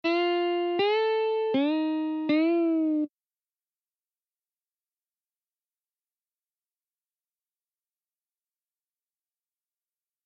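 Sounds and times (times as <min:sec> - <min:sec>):
guitar string bend: 0:00.0 - 0:03.1.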